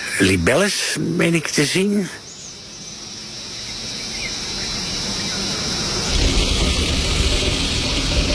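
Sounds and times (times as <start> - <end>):
crickets chirping outdoors: 0.0 - 8.3
soft hiss: 0.0 - 8.3
speech: 0.2 - 2.2
low rumble: 5.5 - 8.3.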